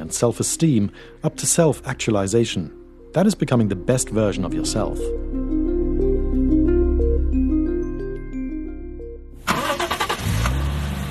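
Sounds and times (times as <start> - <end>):
melodic musical passage: 0.0 - 9.8
speech: 0.1 - 5.3
car engine cranking and catching: 9.4 - 11.1.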